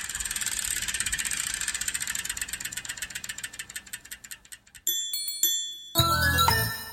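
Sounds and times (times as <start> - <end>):
bicycle chain whirring: 0.0 - 5.1
bicycle bell ringing: 4.8 - 6.9.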